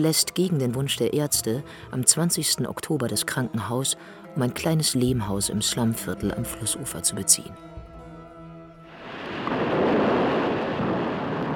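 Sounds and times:
speech: 0.0s - 7.8s
heavy rain pouring in the mountains: 8.9s - 11.5s.

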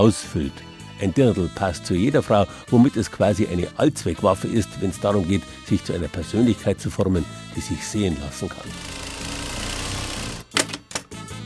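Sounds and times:
speech: 0.0s - 9.0s
sewing machine tailoring made-to-measure dirndls whirring: 8.5s - 10.6s.

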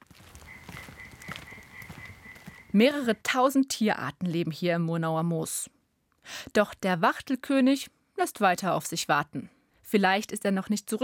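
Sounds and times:
European tree frog croaking in a moorland at dusk: 0.2s - 3.0s
dense chorus of other calling animals in a moorland: 0.4s - 2.8s
speech: 2.8s - 11.0s.

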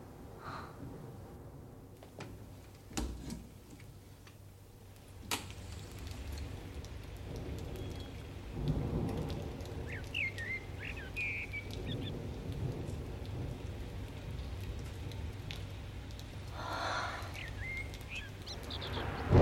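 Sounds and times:
low rolling rumble of thunder: 0.0s - 19.3s
steady rain hissing in a thunderstorm: 0.0s - 19.3s
faint bird chirps: 9.8s - 12.2s, 16.7s - 19.3s.

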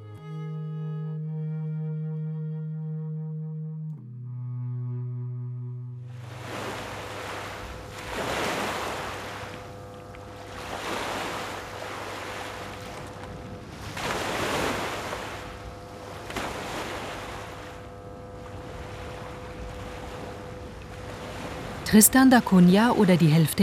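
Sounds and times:
brief tonal musical passage: 0.0s - 8.0s
low steady drone: 0.0s - 23.6s
ocean surf waves breaking on shore: 6.1s - 23.6s
speech: 21.9s - 23.6s.

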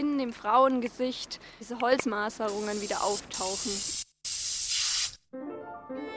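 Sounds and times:
speech: 0.0s - 4.1s
spray paint can hissing: 2.5s - 5.2s.

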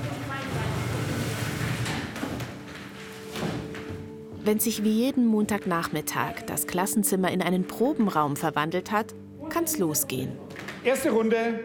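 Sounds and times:
chairs and tables scraping and bumping across a hard floor: 0.0s - 4.4s
speech: 4.5s - 11.6s.

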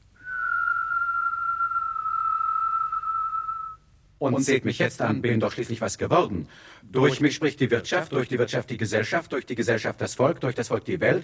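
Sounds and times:
person whistling a long steady note: 0.2s - 3.9s
speech: 4.2s - 11.2s.

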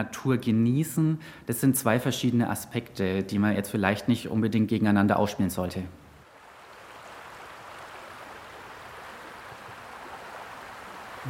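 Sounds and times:
speech: 0.0s - 6.0s
water rushing in a brook: 6.2s - 11.2s.

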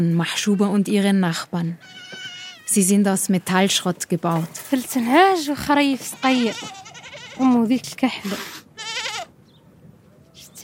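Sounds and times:
speech: 0.0s - 6.8s, 7.4s - 8.6s
small flock of sheep or goats bleating in scrap metal pens: 1.8s - 2.8s, 5.7s - 7.8s, 8.8s - 9.3s.

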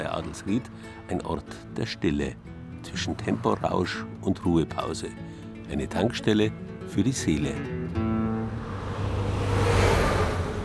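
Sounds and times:
speech: 0.3s - 8.1s
cars and trucks rushing past on motorway: 8.0s - 10.6s.

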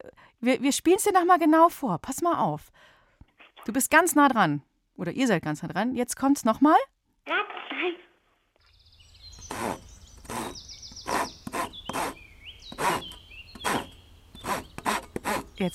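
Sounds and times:
speech: 0.4s - 3.0s, 3.6s - 8.0s
faint bird chirps: 8.6s - 14.8s
hand saw cutting through wood: 9.3s - 15.7s.

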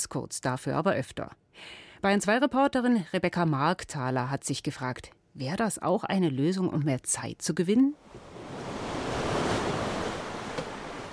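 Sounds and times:
speech: 0.0s - 8.3s
gusty wind-like hiss: 8.0s - 11.1s
ocean waves on the open sea heard from a sailboat: 8.0s - 11.1s.

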